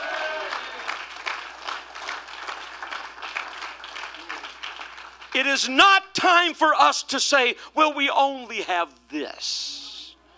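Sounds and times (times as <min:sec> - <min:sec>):
audience clapping: 0:00.0 - 0:05.4
speech: 0:05.4 - 0:09.8.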